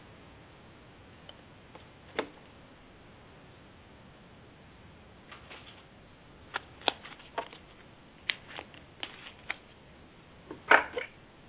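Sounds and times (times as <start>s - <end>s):
deck of cards being shuffled: 5.3s - 5.8s, 6.5s - 9.7s.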